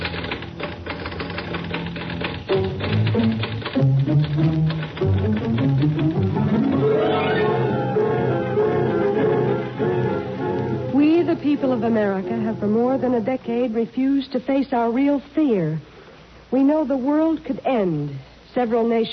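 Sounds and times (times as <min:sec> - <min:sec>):
typewriter keys clacking as a man types at his desk: 0:00.0 - 0:06.9
speech: 0:02.5 - 0:02.9, 0:11.8 - 0:15.9, 0:16.5 - 0:19.1
sustained musical tones gliding upward: 0:02.6 - 0:13.3.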